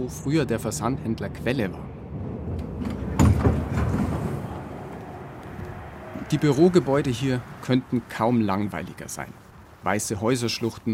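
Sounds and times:
speech: 0.0s - 2.0s, 6.3s - 10.9s
subway train rumble in an underground station: 1.2s - 7.6s.

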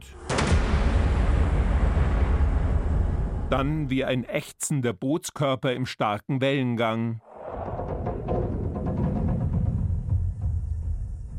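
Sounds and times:
hard booming film-score drums: 0.0s - 4.0s, 7.3s - 11.3s
speech: 3.5s - 7.3s.

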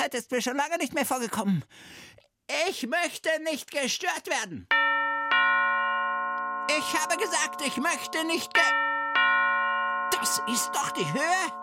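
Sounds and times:
speech: 0.0s - 4.8s, 6.7s - 8.9s, 10.2s - 11.6s
doorbell chiming: 4.7s - 11.6s.

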